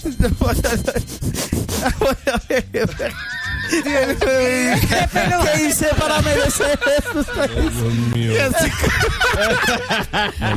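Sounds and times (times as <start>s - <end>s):
laughter: 0.0s - 10.5s
speech: 0.0s - 10.5s
person imitating a dog sniffing: 0.2s - 2.0s.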